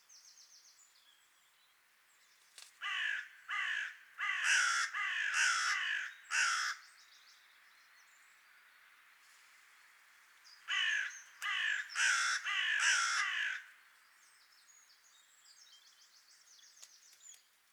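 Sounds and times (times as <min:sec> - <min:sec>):
carrion crow Corvus corone cawing: 0:02.8 - 0:06.8, 0:10.7 - 0:13.7.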